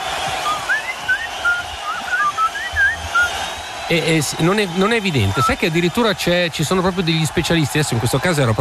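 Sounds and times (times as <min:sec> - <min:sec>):
person whistling a lilting melody: 0:00.4 - 0:03.3
speech: 0:03.9 - 0:08.6.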